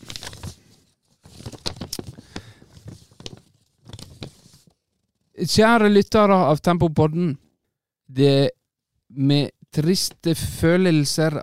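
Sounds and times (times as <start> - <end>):
crisp crinkling and rustling of paper being fetched: 0.0 - 5.3
speech: 5.4 - 7.4, 8.1 - 11.4.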